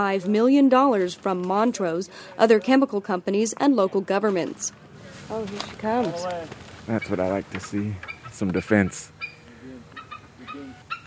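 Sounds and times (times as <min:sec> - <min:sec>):
speech: 0:00.0 - 0:09.1
low noise: 0:00.0 - 0:11.0
bald eagle squealing and whistling calls: 0:08.0 - 0:11.0.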